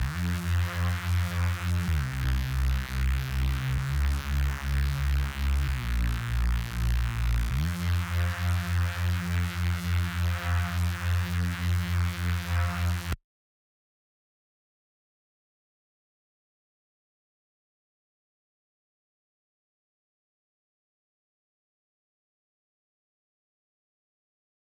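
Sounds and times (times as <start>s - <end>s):
Reese bass in F minor: 0.0s - 13.2s.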